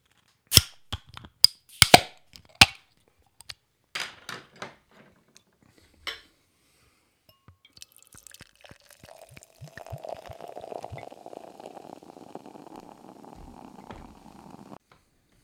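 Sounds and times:
bottle of bourbon-barrel-aged beer being popped open: 0.5s - 0.8s, 1.7s - 2.8s, 7.7s - 14.8s
metallic clicks and clinks from the bottle opener and cap: 0.5s - 2.8s.

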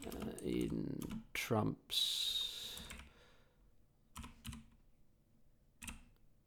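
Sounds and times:
faint typing on a computer keyboard: 0.0s - 1.4s, 2.6s - 3.2s, 4.1s - 5.0s, 5.8s - 6.3s
speech: 0.0s - 2.3s.

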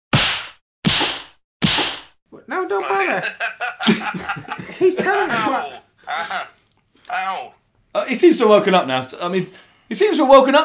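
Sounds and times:
slaps around a man's face: 0.1s - 2.2s
speech: 2.5s - 10.6s
laughter: 2.9s - 6.6s.

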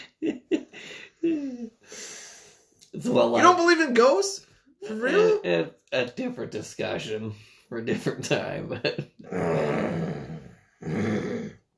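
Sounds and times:
speech: 3.0s - 9.8s
person growling like an animal: 9.2s - 11.7s.

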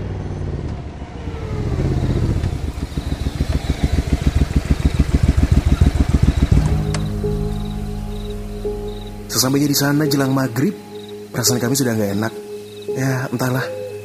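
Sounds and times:
motorcycle engine revving and idling: 0.0s - 9.2s
speech: 9.4s - 12.4s, 13.0s - 13.8s.

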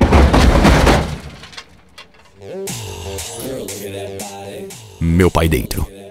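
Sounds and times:
glass shattering in a car crash: 0.0s - 2.5s
speech: 2.4s - 6.0s
upbeat music: 2.8s - 6.0s.

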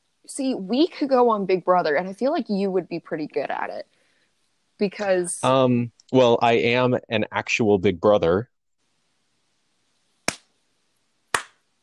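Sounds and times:
speech: 0.3s - 4.0s, 4.8s - 8.5s
sharp crisp hand claps: 10.3s - 10.5s, 11.3s - 11.6s.

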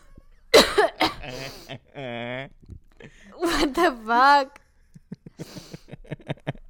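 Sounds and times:
person in a loud coughing fit: 0.5s - 2.5s
speech: 1.3s - 2.6s, 3.6s - 4.6s.

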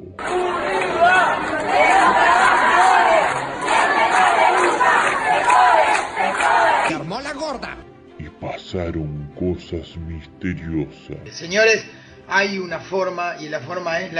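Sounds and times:
crowd of many voices shouting battle cry: 0.2s - 6.9s
speech: 8.7s - 14.1s.

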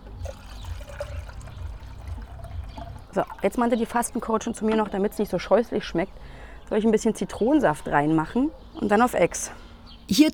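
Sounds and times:
stream of cold water running into a container: 0.2s - 4.2s
speech: 3.2s - 10.3s.

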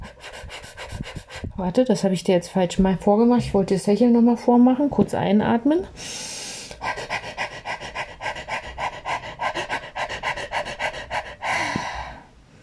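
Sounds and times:
person panting quick short breaths through pursed lips: 0.0s - 1.6s, 6.0s - 12.3s
speech: 1.6s - 6.1s
person's long exhale: 6.0s - 6.8s.

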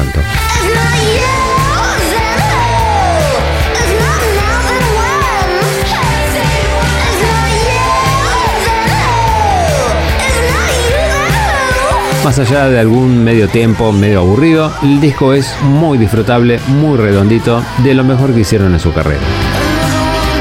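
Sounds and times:
distorted guitars: 0.0s - 20.3s
woman screaming punk rock vocals: 0.4s - 12.3s, 19.5s - 20.3s
speech: 12.3s - 19.6s.

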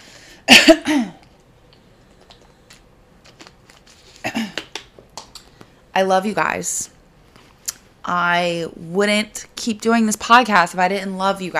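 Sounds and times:
speech: 0.5s - 1.2s, 6.0s - 7.0s, 8.1s - 11.5s
throat clearing: 4.2s - 4.7s.

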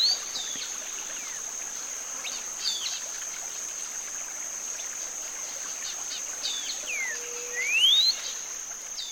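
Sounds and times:
soft hiss: 0.0s - 9.1s
steady high insect drone: 0.0s - 9.1s
cinnamon-bellied saltator singing whistled phrases: 6.9s - 8.2s.

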